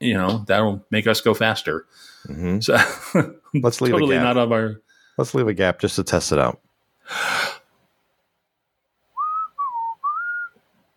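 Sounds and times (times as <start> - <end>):
speech: 0.0 - 7.6
breathy exhale: 7.1 - 7.7
person whistling: 9.2 - 10.6.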